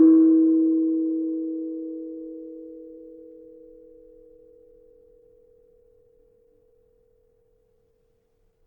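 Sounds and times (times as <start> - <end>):
gamelan keno gong tuned to 4E: 0.0 - 3.5.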